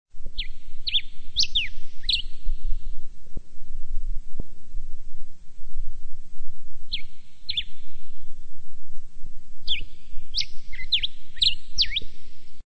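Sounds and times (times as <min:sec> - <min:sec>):
diuca finch calling in Chile: 0:00.4 - 0:02.9, 0:06.9 - 0:08.0, 0:09.6 - 0:12.3.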